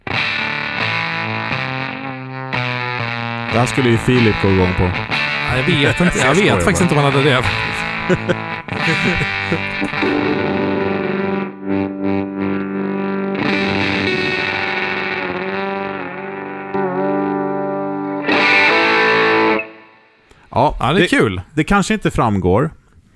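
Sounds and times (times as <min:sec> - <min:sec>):
heavily distorted electric guitar through an effects pedal in gated mode: 0:00.0 - 0:19.8
laughter: 0:03.5 - 0:10.2
speech: 0:03.5 - 0:10.8, 0:20.8 - 0:22.8.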